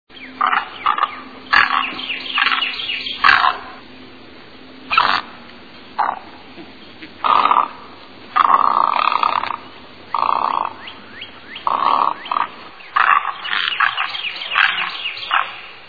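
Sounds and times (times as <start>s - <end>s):
great egret calling: 0.1s - 4.0s, 4.8s - 5.4s, 6.0s - 15.8s.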